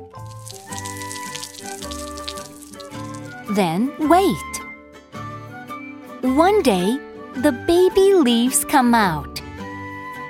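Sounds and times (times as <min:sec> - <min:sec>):
water pouring and splashing onto soil and seeds in a plant pot: 0:00.0 - 0:03.6
speech: 0:03.5 - 0:04.5, 0:06.2 - 0:09.4.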